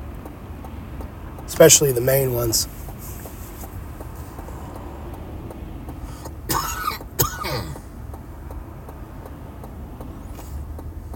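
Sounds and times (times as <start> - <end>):
faint regular ticking: 0.0 - 11.1
steady hum of road noise: 0.0 - 11.1
speech: 1.5 - 2.8
person coughing and clearing throat: 6.5 - 7.8.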